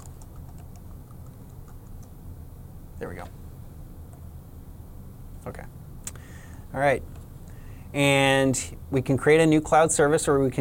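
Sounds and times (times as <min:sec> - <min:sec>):
faint typing on a computer keyboard while logging in: 0:00.0 - 0:02.1
steady low hum: 0:00.0 - 0:10.5
speech: 0:03.0 - 0:03.4, 0:05.4 - 0:05.8, 0:06.7 - 0:07.2, 0:07.9 - 0:10.5.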